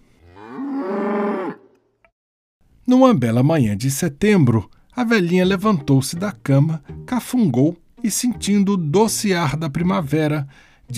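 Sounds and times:
big brown cow mooing: 0:00.2 - 0:01.8
speech: 0:02.9 - 0:10.9.

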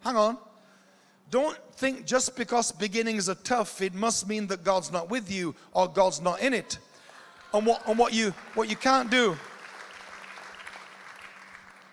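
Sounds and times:
speech: 0:00.1 - 0:00.5, 0:01.3 - 0:06.9, 0:07.5 - 0:09.5
audience clapping: 0:07.0 - 0:11.9.

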